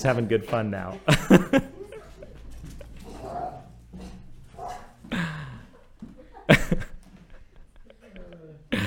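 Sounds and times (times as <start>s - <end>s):
speech: 0.0s - 1.8s
laughter: 1.0s - 3.3s, 5.1s - 8.8s
excited dog barking and yelping at a delivery driver: 2.8s - 5.0s.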